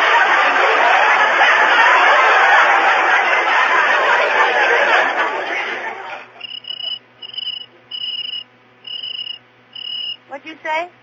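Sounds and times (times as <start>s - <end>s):
laughter: 0.0s - 8.4s
faint low steady hum: 0.0s - 11.0s
cricket chirping inside a house: 6.4s - 10.2s.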